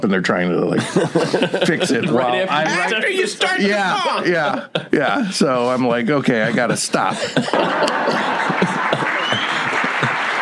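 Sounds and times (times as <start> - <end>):
speech: 0.0 - 9.0
laughter: 0.8 - 10.4
audience applauding: 7.5 - 10.4.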